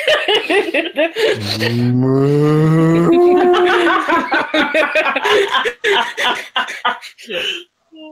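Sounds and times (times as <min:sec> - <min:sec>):
people laughing: 0:00.0 - 0:02.0, 0:02.8 - 0:07.5
people talking: 0:01.3 - 0:05.6, 0:07.3 - 0:08.0
person imitating a cow moo: 0:01.4 - 0:03.9.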